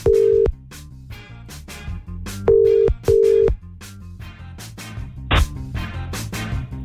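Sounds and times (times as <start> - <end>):
telephone dial or ringback beeps: 0.0 - 0.5, 2.5 - 3.6
rhythmic music: 0.0 - 6.8.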